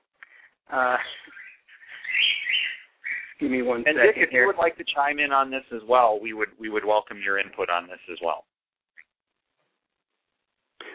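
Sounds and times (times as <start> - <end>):
speech: 0.7 - 1.4, 3.4 - 8.5
pet bird chirping in a room: 0.9 - 4.6.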